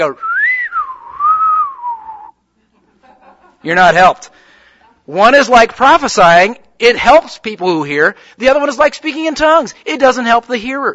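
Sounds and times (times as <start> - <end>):
speech: 0.0 - 0.3, 3.6 - 4.4, 5.1 - 10.9
person whistling a tune: 0.2 - 2.4
laughter: 2.6 - 3.7.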